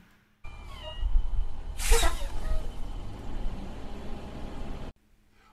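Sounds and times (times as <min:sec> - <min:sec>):
old truck engine rumbling as it is pulled over: 0:00.5 - 0:04.9
hissing burst: 0:01.7 - 0:02.8.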